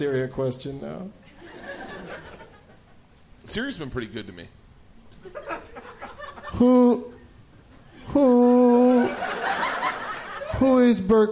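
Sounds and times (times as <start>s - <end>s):
speech: 0.0s - 1.3s, 3.4s - 4.6s, 6.5s - 7.2s, 8.1s - 9.8s, 10.6s - 11.2s
people laughing: 1.3s - 3.0s, 5.1s - 7.0s, 7.8s - 10.9s
man hooting imitating an owl: 8.0s - 9.2s.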